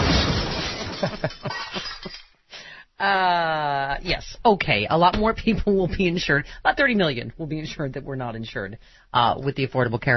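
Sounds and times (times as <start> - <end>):
glass shards clinking and clattering: 0.0 - 2.4
glass shattering: 0.0 - 2.4
speech: 1.0 - 1.9, 3.0 - 10.1.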